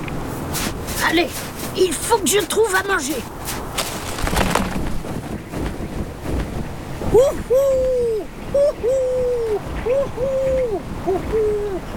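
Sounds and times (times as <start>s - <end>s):
steady broadband wind-like noise: 0.0s - 11.9s
speech: 1.0s - 3.4s, 7.1s - 11.9s
snowy owl hooting: 7.2s - 11.9s.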